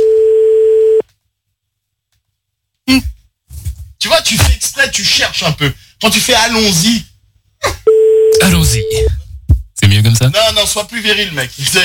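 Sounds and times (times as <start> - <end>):
telephone line tone while a number is dialled: 0.0 - 1.0, 7.9 - 9.1
speech: 4.3 - 7.1, 8.4 - 9.2, 10.1 - 11.8.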